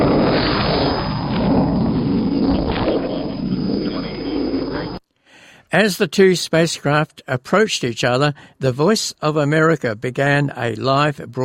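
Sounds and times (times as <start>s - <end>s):
rocket engines roaring at liftoff: 0.0s - 5.0s
speech: 5.7s - 11.4s.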